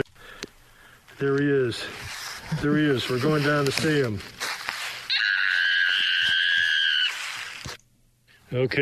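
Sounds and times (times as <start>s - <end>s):
faint noise: 0.0s - 8.8s
speech: 1.2s - 4.4s, 8.5s - 8.8s
fisher cat screaming shrilly: 5.1s - 7.5s.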